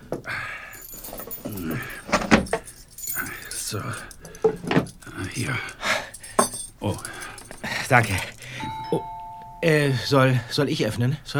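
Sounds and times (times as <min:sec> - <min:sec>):
bunch of keys jangling as they change hands: 0:00.6 - 0:08.6
soft shuffling: 0:00.7 - 0:08.7
speech: 0:03.7 - 0:04.1, 0:06.8 - 0:07.1, 0:07.9 - 0:08.3, 0:09.7 - 0:11.3.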